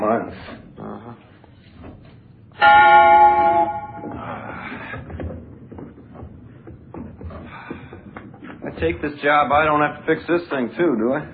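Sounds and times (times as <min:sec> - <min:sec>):
speech: 0:00.1 - 0:00.6, 0:02.6 - 0:03.0, 0:08.8 - 0:11.3
old tower bell ringing: 0:02.6 - 0:04.4.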